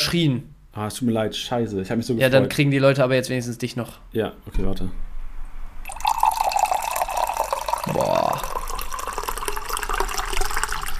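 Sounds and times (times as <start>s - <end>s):
speech: 0.1s - 5.1s
tea being poured into a large 0.7-litre mug: 5.9s - 10.9s
person exclaiming: 7.8s - 8.6s.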